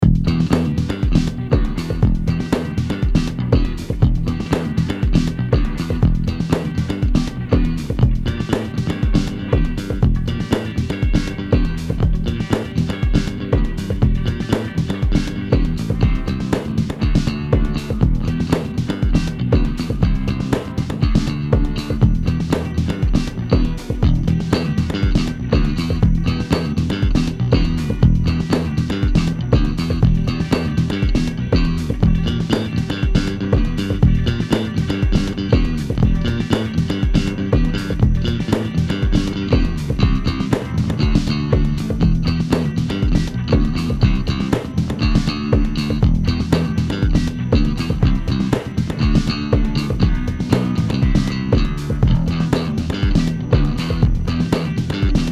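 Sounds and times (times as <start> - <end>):
tube fuzz bass: 0.0 - 55.2.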